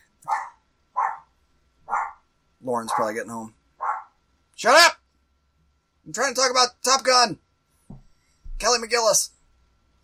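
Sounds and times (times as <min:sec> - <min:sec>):
dogs barking in short sharp bursts: 0:00.2 - 0:01.3, 0:01.9 - 0:02.2, 0:02.8 - 0:04.2
speech: 0:02.6 - 0:03.6, 0:04.6 - 0:05.0, 0:06.1 - 0:07.4, 0:08.6 - 0:09.4.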